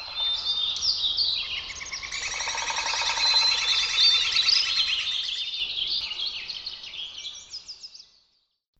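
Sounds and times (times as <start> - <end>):
dense chorus of high overlapping bird calls and chirps: 0.0 - 8.5.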